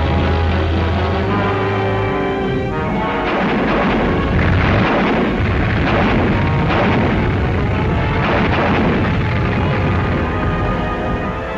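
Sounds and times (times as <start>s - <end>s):
steady low drone: 0.0s - 11.5s
Canadian artillery guns firing in support of British infantry across the IJssel River: 2.8s - 11.2s.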